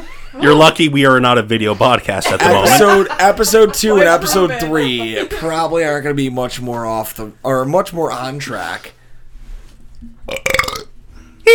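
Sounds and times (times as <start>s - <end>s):
speech: 0.3s - 9.0s, 10.0s - 10.7s
laughter: 2.1s - 5.6s
loud drawn-out croaking burp: 10.3s - 11.0s.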